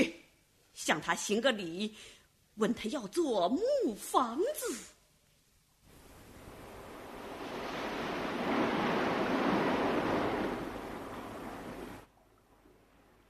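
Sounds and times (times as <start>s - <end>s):
speech: 0.8s - 4.9s
ocean waves surging: 5.9s - 12.1s.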